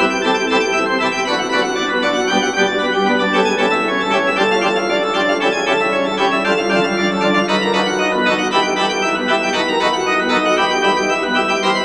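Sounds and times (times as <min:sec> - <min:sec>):
toccata: 0:00.1 - 0:11.8.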